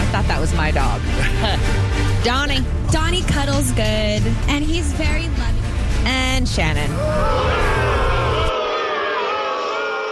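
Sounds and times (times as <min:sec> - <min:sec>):
speech: 0:00.5 - 0:08.1
audience booing: 0:06.9 - 0:10.1.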